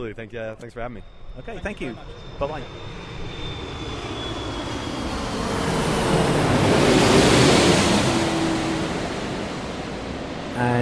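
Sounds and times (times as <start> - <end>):
faint low hum: 0.0 - 2.7
speech: 0.0 - 3.2
airliner cabin roar aboard an Airbus A318: 0.0 - 10.8.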